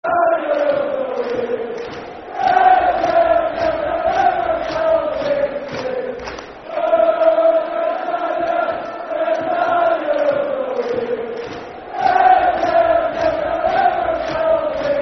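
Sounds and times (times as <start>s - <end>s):
football crowd chanting in Northern Ireland: 0.0s - 15.0s.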